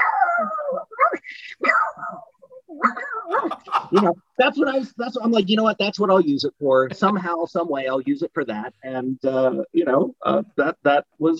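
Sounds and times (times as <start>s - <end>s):
person's voice imitating a pug barking: 0.0s - 4.1s
speech: 3.9s - 11.3s.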